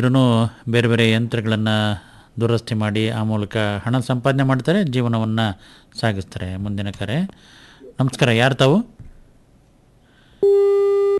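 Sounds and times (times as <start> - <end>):
speech: 0.0 - 9.0, 10.4 - 10.8
telephone busy tone after a call is disconnected: 10.4 - 11.1.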